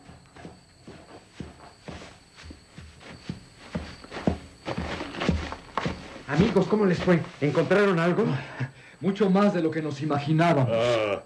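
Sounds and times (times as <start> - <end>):
thudding footsteps approaching at a walking pace: 0.0 - 8.5
faint hum: 0.0 - 11.2
speech: 6.3 - 11.2.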